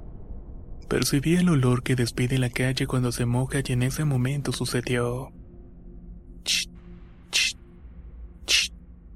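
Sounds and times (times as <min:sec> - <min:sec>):
speech: 0:00.9 - 0:05.4, 0:06.4 - 0:06.7, 0:07.3 - 0:07.6
sharp hissing psst: 0:06.5 - 0:06.7, 0:07.3 - 0:07.6, 0:08.5 - 0:08.7.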